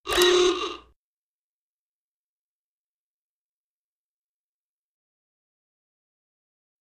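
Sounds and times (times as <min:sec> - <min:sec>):
robot ahoogah horns: 0:00.1 - 0:00.9.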